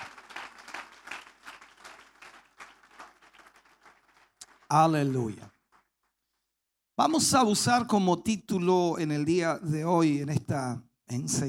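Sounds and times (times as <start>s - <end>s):
congregation applauding in praise during a church celebration service: 0.0s - 5.9s
speech: 4.7s - 5.5s, 7.0s - 11.4s.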